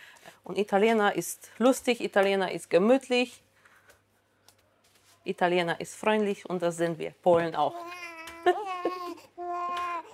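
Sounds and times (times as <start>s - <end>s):
speech: 0.4s - 3.4s, 5.2s - 9.0s
hungry four-month-old baby boy crying: 7.8s - 10.1s.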